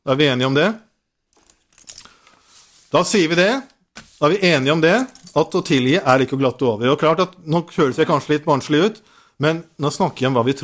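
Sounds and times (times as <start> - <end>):
speech: 0.0 - 0.8, 2.9 - 10.6
large bunch of keys jangling: 1.4 - 2.3, 4.9 - 6.2.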